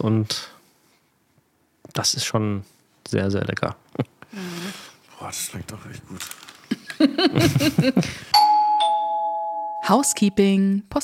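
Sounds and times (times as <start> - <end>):
speech: 0.0 - 0.5, 1.9 - 8.6, 9.9 - 11.0
laughter: 6.7 - 8.3
two-note doorbell ding-dong chime: 8.4 - 10.4.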